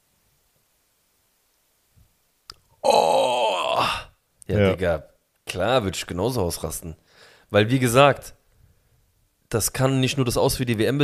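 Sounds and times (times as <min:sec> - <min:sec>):
injured woman moaning in pain at a World Cup match: 0:02.8 - 0:04.1
speech: 0:04.5 - 0:08.4, 0:09.5 - 0:11.0.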